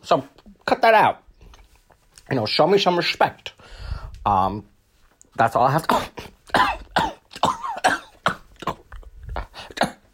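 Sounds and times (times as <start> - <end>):
speech: 0.1 - 1.2, 2.3 - 4.7, 5.4 - 6.8
harsh broadband coughing: 5.8 - 10.1.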